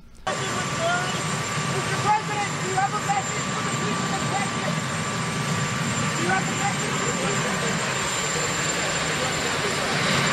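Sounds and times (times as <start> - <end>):
faint indistinct voices: 0.0 - 10.3
helicopter engine running with a rumbling roar: 0.0 - 10.3.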